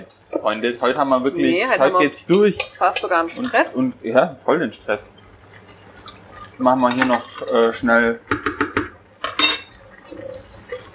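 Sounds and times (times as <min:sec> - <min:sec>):
faint kitchen noise: 0:00.0 - 0:10.9
speech: 0:00.4 - 0:05.2, 0:06.6 - 0:08.4
metal lid clattering onto a pot of Thai red curry sauce: 0:08.4 - 0:09.7.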